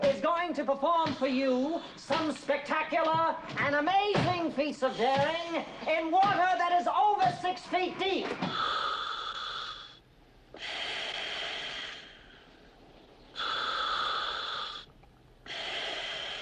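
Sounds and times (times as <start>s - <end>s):
speech: 0.1s - 8.9s
scuba regulator breathing from a diver in a mask: 8.4s - 16.4s.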